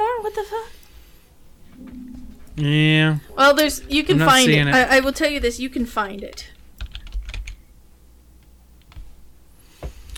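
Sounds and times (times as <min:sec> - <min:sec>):
speech: 0:00.3 - 0:00.8, 0:02.6 - 0:06.6
typing on a computer keyboard: 0:06.8 - 0:07.6.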